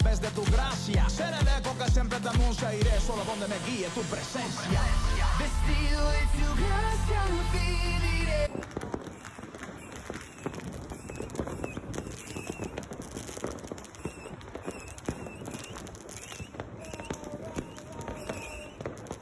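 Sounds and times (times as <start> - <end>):
fireworks crackling and popping: 0.0 - 19.2
speech: 0.2 - 8.9.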